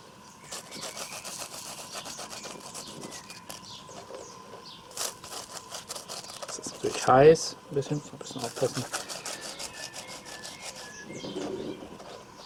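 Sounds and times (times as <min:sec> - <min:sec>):
toasted bread being rubbed in a kitchen: 0:00.4 - 0:04.2, 0:04.9 - 0:07.2, 0:08.4 - 0:11.2
speech: 0:06.8 - 0:09.0.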